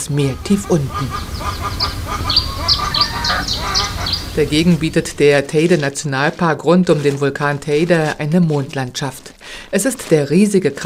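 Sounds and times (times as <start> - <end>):
speech: 0.0 - 2.4, 4.4 - 10.8
geese honking on a hillside farm in Tenerife: 0.0 - 5.3
chickens squawking on a hillside farm in Tenerife: 0.2 - 5.2.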